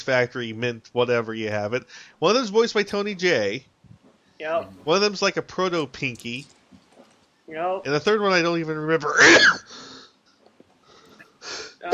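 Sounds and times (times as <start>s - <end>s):
speech: 0.0s - 3.7s, 4.4s - 6.6s, 7.5s - 9.9s, 11.4s - 11.9s
person sneezing: 11.5s - 11.9s.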